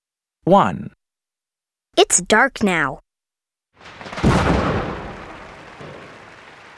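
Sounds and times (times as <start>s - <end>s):
speech: 0.5s - 1.0s, 2.0s - 3.0s
big pink firework exploding: 3.8s - 6.7s.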